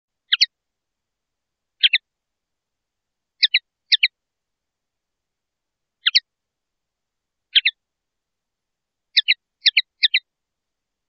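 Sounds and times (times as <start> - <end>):
common linnet song: 0.2 - 0.6, 1.8 - 2.1, 3.4 - 4.2, 6.0 - 6.3, 7.5 - 7.8, 9.1 - 10.3.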